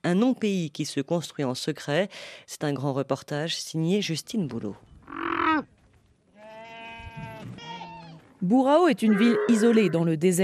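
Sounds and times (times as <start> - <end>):
speech: 0.1 - 4.9, 8.4 - 10.4
goats and sheep bleating at a livestock market in Burao, Somaliland: 6.3 - 8.2, 9.0 - 10.1.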